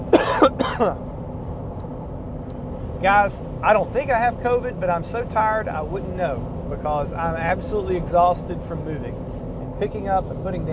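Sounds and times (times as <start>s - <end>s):
person coughing: 0.1s - 1.0s
speech: 0.4s - 1.1s, 3.0s - 10.7s.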